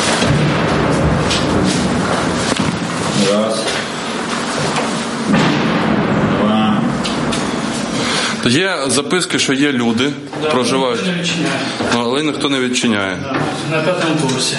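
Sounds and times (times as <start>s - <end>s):
noisy rumbling outdoor background in Druzhkivka: 0.0s - 10.0s
repeated explosions in Druzhkivka: 0.0s - 10.4s
speech: 8.4s - 14.5s.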